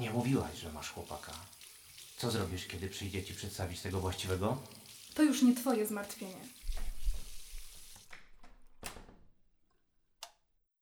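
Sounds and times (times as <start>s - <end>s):
speech: 0.0s - 1.6s, 2.2s - 6.9s
tap water gushing into a sink while washing: 0.0s - 8.4s.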